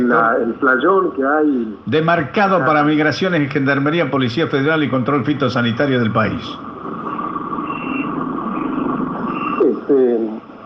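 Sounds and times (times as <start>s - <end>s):
speech: 0.1s - 6.7s
large vehicle engine rumbling at border crossing: 3.2s - 10.6s
reversing beeps: 7.1s - 9.8s.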